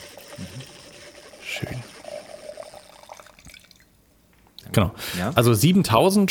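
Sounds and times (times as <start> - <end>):
light-coloured beer pouring into a glass: 0.0 - 4.0
speech: 4.8 - 6.2.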